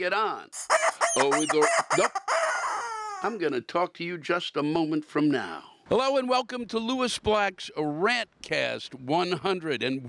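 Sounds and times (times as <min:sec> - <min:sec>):
speech: 0:00.0 - 0:02.2, 0:03.2 - 0:10.0
rubber chicken squawking: 0:00.6 - 0:03.4.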